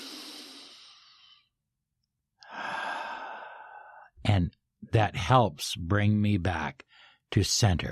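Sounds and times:
slow deliberate deep breath: 0:00.0 - 0:01.6, 0:02.4 - 0:04.2, 0:06.9 - 0:07.2
speech: 0:04.3 - 0:07.9.

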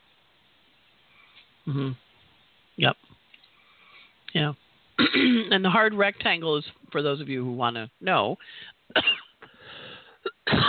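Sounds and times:
speech: 0:01.7 - 0:02.0, 0:02.8 - 0:03.1, 0:04.3 - 0:09.2
person coughing: 0:05.0 - 0:05.6, 0:09.0 - 0:09.3, 0:10.2 - 0:10.6.

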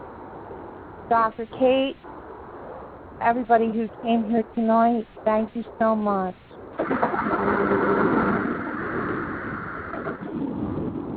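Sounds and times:
faint hiss of rain: 0:00.0 - 0:11.1
speech: 0:01.1 - 0:02.1, 0:03.2 - 0:07.8
low thunder rumbling: 0:06.8 - 0:11.1.

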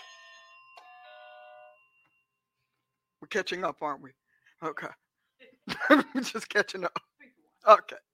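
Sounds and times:
bright bell chime ringing: 0:00.0 - 0:02.8
speech: 0:03.3 - 0:05.0, 0:05.6 - 0:07.0, 0:07.6 - 0:08.1.

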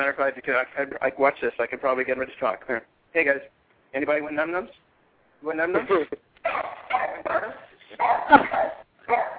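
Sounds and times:
speech: 0:00.0 - 0:04.8, 0:05.4 - 0:06.7
dog barking: 0:06.4 - 0:09.3
laughter: 0:08.0 - 0:08.8.

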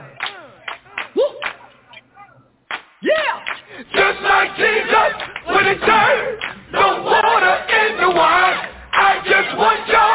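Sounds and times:
hands clapping along to an upbeat song: 0:00.0 - 0:02.0, 0:02.7 - 0:06.6, 0:07.6 - 0:10.1
upbeat song with sung vocals: 0:03.2 - 0:10.1.

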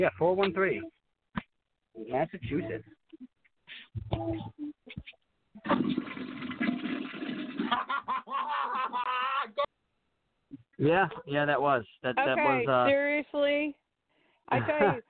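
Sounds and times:
speech: 0:00.0 - 0:01.0, 0:02.0 - 0:03.0, 0:03.7 - 0:06.4, 0:07.7 - 0:09.7, 0:10.8 - 0:13.8, 0:14.5 - 0:15.0
toilet flushing over a tinny phone line: 0:05.6 - 0:07.9
people laughing: 0:07.6 - 0:09.7.

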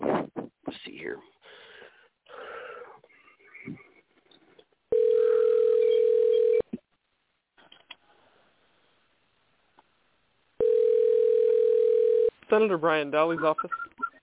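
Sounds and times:
steady telephone line tone while placing a call: 0:04.9 - 0:06.6, 0:10.6 - 0:12.3
speech: 0:12.6 - 0:13.8.

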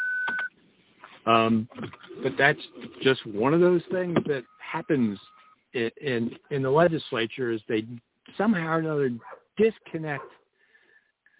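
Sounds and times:
speech: 0:01.2 - 0:10.4
car parking proximity alarm beeping in a garage: 0:04.1 - 0:05.6.

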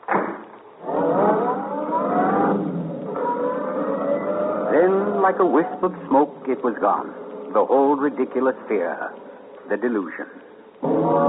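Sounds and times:
roadster car engine revving and driving off down a street: 0:00.8 - 0:05.6
speech: 0:05.3 - 0:11.2.

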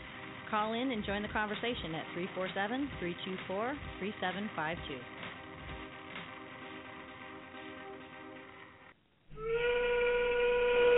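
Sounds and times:
speech: 0:00.5 - 0:05.2
factory steam whistle blowing: 0:09.3 - 0:10.9.

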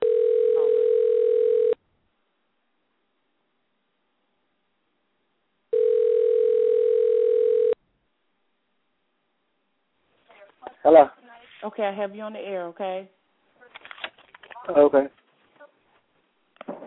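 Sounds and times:
telephone ringback tone on an outgoing call: 0:00.0 - 0:01.8, 0:05.7 - 0:07.8
speech: 0:10.9 - 0:11.1, 0:11.8 - 0:13.2, 0:14.7 - 0:15.2.

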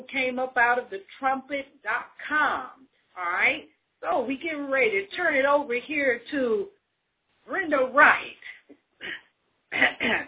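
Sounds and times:
speech: 0:00.0 - 0:06.8, 0:07.5 - 0:10.2
throat clearing: 0:09.0 - 0:10.2.

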